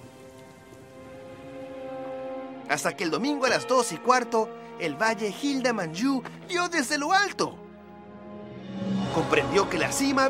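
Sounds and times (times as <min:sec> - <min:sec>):
steady rain falling in an even patter: 0:00.0 - 0:02.4
speech: 0:02.7 - 0:07.6, 0:09.2 - 0:10.2.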